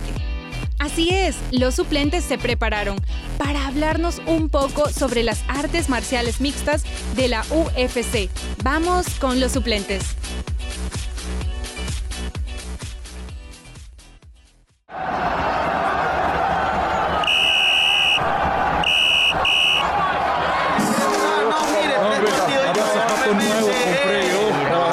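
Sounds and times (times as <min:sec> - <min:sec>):
rhythmic music: 0:00.0 - 0:14.1, 0:20.7 - 0:24.9
speech: 0:00.8 - 0:10.5
roaring stadium crowd: 0:14.9 - 0:24.9
referee's whistle blowing at the end of the match: 0:17.0 - 0:19.9.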